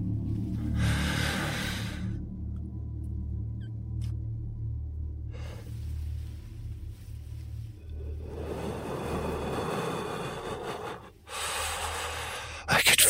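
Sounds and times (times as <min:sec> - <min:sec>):
low steady rumble: 0:00.0 - 0:12.6
man asleep in bed breathing heavily: 0:00.6 - 0:02.3, 0:07.8 - 0:12.7.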